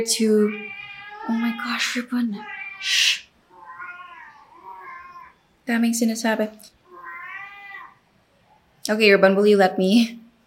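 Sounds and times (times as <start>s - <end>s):
speech: 0.0s - 0.7s, 1.3s - 3.2s, 5.7s - 6.8s, 8.9s - 10.2s
cat meowing: 0.4s - 5.4s, 6.8s - 8.0s.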